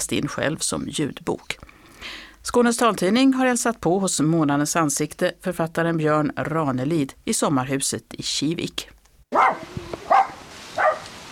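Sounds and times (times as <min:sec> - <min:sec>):
speech: 0:00.0 - 0:10.0
miniature pinscher barking in welcome at a summer house: 0:09.3 - 0:11.2.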